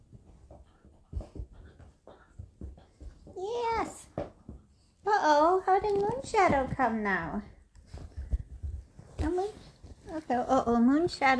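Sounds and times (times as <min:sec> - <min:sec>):
small dog panting faintly: 0:00.0 - 0:03.3
speech: 0:05.2 - 0:07.5, 0:09.4 - 0:11.3.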